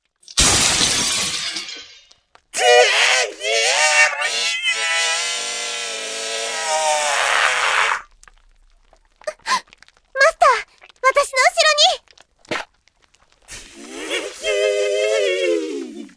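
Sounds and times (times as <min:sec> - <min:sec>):
window glass shattering: 0:00.2 - 0:02.3
girl's long shrill scream: 0:02.6 - 0:05.4, 0:06.4 - 0:08.0, 0:09.3 - 0:09.6, 0:10.2 - 0:12.0
laughter: 0:02.6 - 0:05.4, 0:13.5 - 0:16.1.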